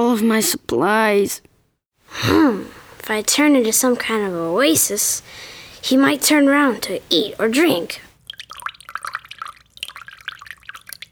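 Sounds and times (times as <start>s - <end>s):
speech: 0.0s - 1.5s, 2.1s - 8.1s
water dripping: 2.4s - 11.0s.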